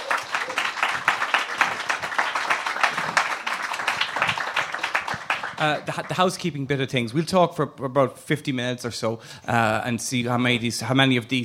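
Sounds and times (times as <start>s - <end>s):
audience applause: 0.0s - 6.4s
speech: 5.6s - 11.4s.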